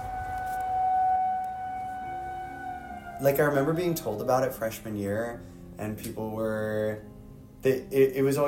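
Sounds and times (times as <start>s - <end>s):
tornado siren wailing in a test: 0.0s - 4.2s
speech: 3.2s - 8.4s.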